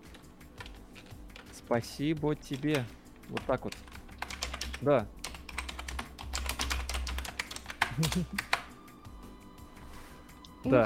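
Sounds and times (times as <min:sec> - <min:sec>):
typing a message on computer keyboard: 0:00.0 - 0:01.6, 0:02.5 - 0:08.7
speech: 0:01.7 - 0:03.8, 0:04.8 - 0:05.2, 0:08.0 - 0:08.5, 0:10.6 - 0:10.8
laughter: 0:07.9 - 0:08.4.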